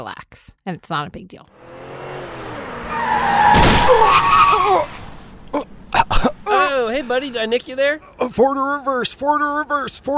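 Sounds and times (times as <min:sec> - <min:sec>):
speech: 0:00.0 - 0:01.8, 0:06.8 - 0:10.1
car tires screeching in a skid: 0:01.5 - 0:07.6
car crashing into a person: 0:02.2 - 0:07.2.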